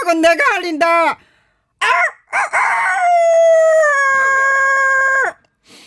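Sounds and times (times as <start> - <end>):
speech: 0.1 - 1.3, 1.8 - 3.4
rooster crow imitated by a human voice: 1.8 - 5.4.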